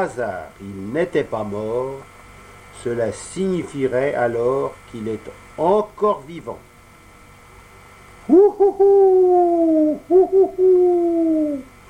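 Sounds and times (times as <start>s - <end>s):
speech: 0.0s - 2.1s, 2.8s - 6.7s, 8.3s - 11.7s
owl hooting: 8.2s - 11.8s.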